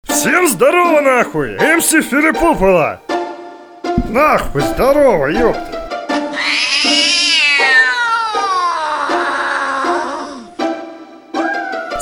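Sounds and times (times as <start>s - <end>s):
speech: 0.2s - 3.1s, 4.1s - 5.7s
cat meowing: 6.3s - 10.5s.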